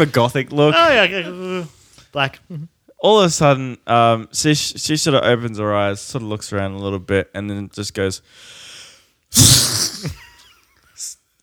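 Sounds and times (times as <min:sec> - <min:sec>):
speech: 0:00.0 - 0:08.7, 0:09.3 - 0:10.2
voice imitating a woman sneezing and vomiting: 0:09.3 - 0:10.3.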